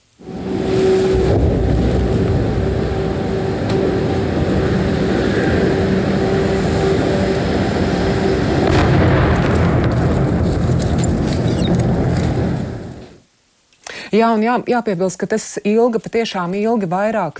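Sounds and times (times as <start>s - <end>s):
steady droning hum: 0.0s - 13.6s
explosions rumbling during a drone attack: 0.2s - 13.2s
air defense fire during a drone attack: 1.1s - 13.2s
speech: 14.2s - 17.3s.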